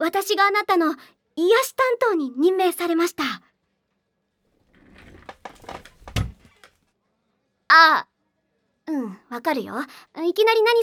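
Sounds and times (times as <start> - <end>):
speech: 0.0 - 3.5, 7.7 - 8.1, 8.9 - 10.8
wooden chair knocked over and bouncing on the floor: 4.7 - 6.8.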